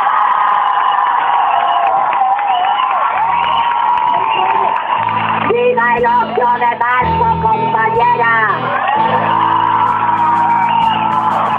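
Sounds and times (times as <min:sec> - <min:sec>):
whoops from a crowd: 0:00.0 - 0:05.2, 0:08.6 - 0:11.5
large crowd shouting and cheering at a feminist strike rally in Granada: 0:00.0 - 0:11.5.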